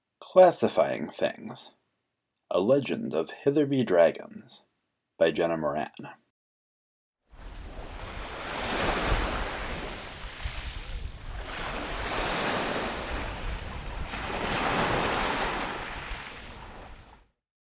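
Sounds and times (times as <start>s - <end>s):
speech: 0.4s - 1.8s, 2.5s - 6.2s
sea waves crashing on shore: 7.3s - 17.2s
steady windy rush: 7.4s - 17.2s.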